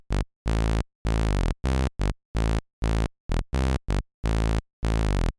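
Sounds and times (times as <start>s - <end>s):
synth bass: 0.1s - 5.3s.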